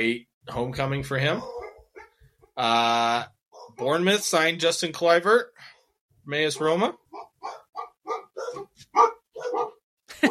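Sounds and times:
speech: 0.0 - 1.6, 2.6 - 7.6, 8.4 - 10.2
dogs barking: 1.4 - 2.6, 3.5 - 4.0, 6.6 - 10.2.

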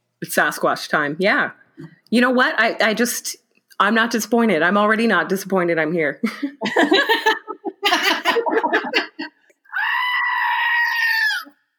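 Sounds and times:
speech: 0.2 - 7.4
person laughing excitedly: 6.3 - 9.4
goat screaming: 9.7 - 11.6.

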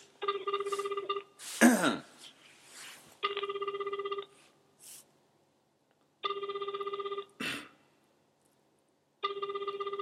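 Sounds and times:
phone call ringing through a speakerphone: 0.0 - 1.5, 3.2 - 4.5, 6.2 - 7.4, 9.2 - 10.0.

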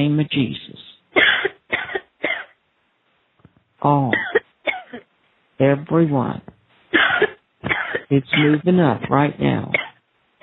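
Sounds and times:
speech: 0.0 - 0.8, 3.8 - 4.2, 5.6 - 6.5, 8.1 - 9.8
harsh forceful coughs: 1.2 - 2.6, 4.1 - 5.1, 7.0 - 8.6, 9.7 - 10.4.

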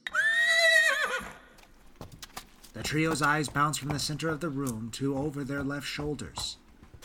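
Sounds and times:
horse shrill neigh: 0.0 - 1.5
sharp hoof stomps and scuffs: 1.4 - 7.0
speech: 2.8 - 6.6.

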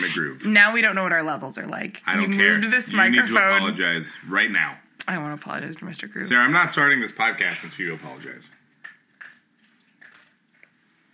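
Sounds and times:
speech: 0.0 - 8.6
pet crunching dry food: 7.5 - 11.0.

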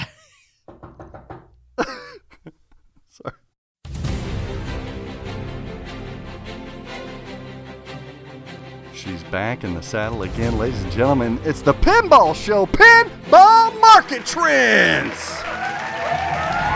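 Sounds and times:
tapping on a car door window: 0.7 - 1.6
music: 3.8 - 16.7
speech: 9.0 - 15.5.

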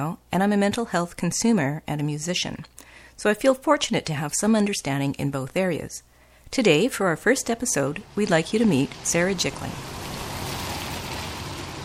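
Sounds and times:
speech: 0.0 - 10.0
steady rain falling on pavement: 8.0 - 11.8.

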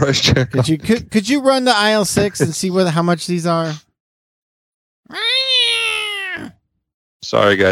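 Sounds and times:
speech: 0.0 - 3.8, 7.2 - 7.7
cat meowing in a store checkout area: 5.1 - 6.6.

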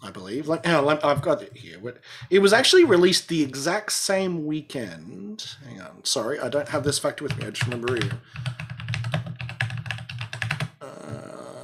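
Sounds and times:
speech: 0.0 - 8.7
typing on a mechanical keyboard: 7.2 - 10.8.

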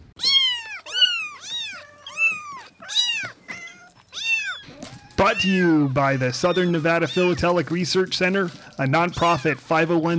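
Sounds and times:
kittens meowing: 0.1 - 7.6
speech: 5.2 - 10.1.

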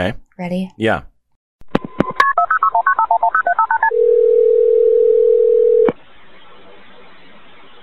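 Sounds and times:
speech: 0.0 - 1.1
telephone ringing tone on a 911 emergency call line: 2.3 - 5.9.

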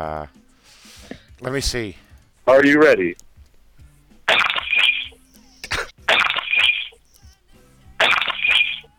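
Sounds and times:
speech: 0.0 - 0.4, 1.4 - 3.2
glass breaking sound effect: 4.3 - 5.2, 6.1 - 7.0, 8.0 - 8.9.

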